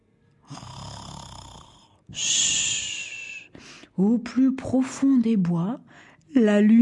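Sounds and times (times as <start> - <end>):
bear snoring deeply: 0.4 - 2.4
speech: 2.1 - 2.5, 4.0 - 6.8.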